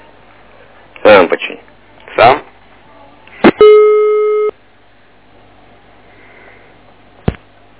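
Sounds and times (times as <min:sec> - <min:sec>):
speech: 0:01.0 - 0:02.5
steady electronic telephone busy tone: 0:03.5 - 0:04.5.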